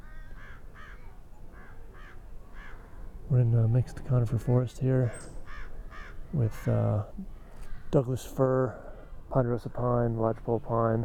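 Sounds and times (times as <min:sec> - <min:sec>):
juvenile American crow begging calls in a mixed conifer forest: 0:00.0 - 0:03.1, 0:05.0 - 0:07.9
speech: 0:03.3 - 0:05.4, 0:06.3 - 0:11.0.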